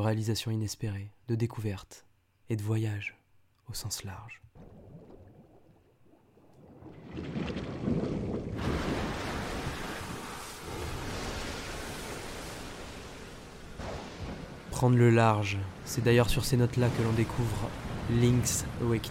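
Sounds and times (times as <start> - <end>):
speech: 0.0 - 4.7, 7.2 - 7.6, 14.8 - 19.0
stormy sea waves crashing in a video game tempest: 6.6 - 19.0
wind-like noise: 6.7 - 19.0.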